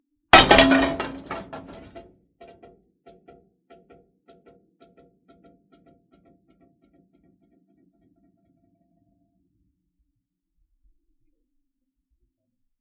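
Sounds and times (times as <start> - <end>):
metal impact hit: 0.4 - 2.0.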